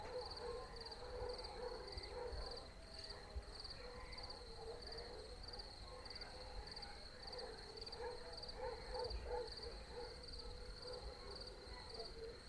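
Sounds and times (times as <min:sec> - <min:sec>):
crickets chirping at night in the country: 0:00.0 - 0:12.4.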